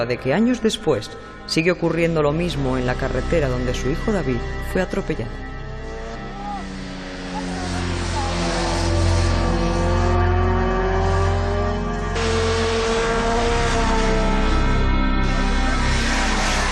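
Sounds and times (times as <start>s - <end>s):
speech: 0.0s - 5.5s
motorcycle engines revving during a race on a road: 5.3s - 16.6s.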